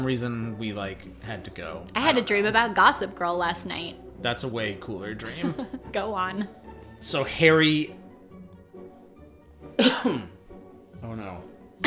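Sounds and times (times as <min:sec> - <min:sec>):
speech: 0:00.0 - 0:08.0, 0:09.8 - 0:10.3, 0:11.0 - 0:11.8
person coughing: 0:09.8 - 0:10.4.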